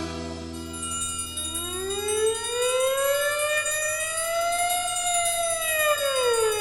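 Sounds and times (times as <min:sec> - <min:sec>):
fire engine siren wailing: 0:01.6 - 0:06.6.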